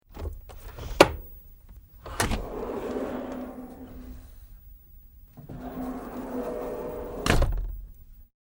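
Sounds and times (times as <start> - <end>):
large internal sliding door opening and closing: 2.0 - 4.4, 5.4 - 7.8.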